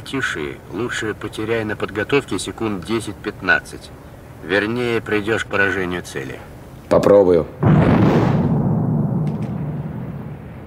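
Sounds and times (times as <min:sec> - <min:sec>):
speech: 0:00.1 - 0:07.9
naval gun blast from a ship's third gun turret: 0:07.6 - 0:10.6.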